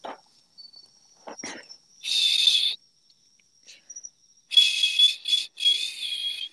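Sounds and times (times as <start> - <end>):
breathy failed whistling: 2.0 - 2.8, 4.5 - 6.5.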